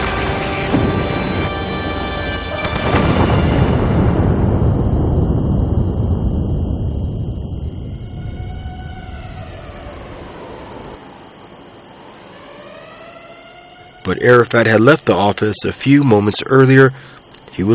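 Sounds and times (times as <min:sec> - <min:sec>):
missile explosion hitting an office: 0:00.0 - 0:11.0
sustained tonal sounds: 0:00.0 - 0:15.0
speech: 0:14.1 - 0:17.7.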